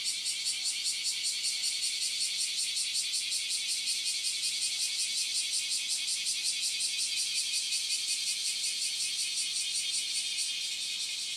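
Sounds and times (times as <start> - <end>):
bear cicada singing: 0.0 - 11.3.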